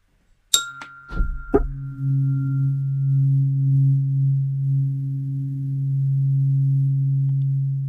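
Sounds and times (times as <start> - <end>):
metallic clinks: 0.5 - 2.8
low Om meditation sine tone at 136.1 hertz: 0.6 - 7.8.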